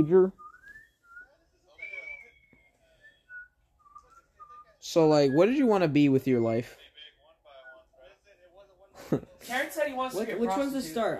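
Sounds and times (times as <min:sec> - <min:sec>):
speech: 0:00.0 - 0:00.4, 0:04.8 - 0:06.8, 0:09.1 - 0:11.1
person whistling a short wavering tune: 0:00.4 - 0:04.7.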